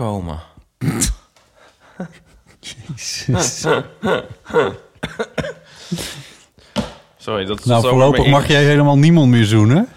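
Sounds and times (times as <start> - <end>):
speech: 0.0 - 1.2, 2.0 - 6.2, 7.2 - 9.9
laughter: 2.0 - 5.7
person coughing with heavy rough coughs and sharp hacks: 3.6 - 6.2.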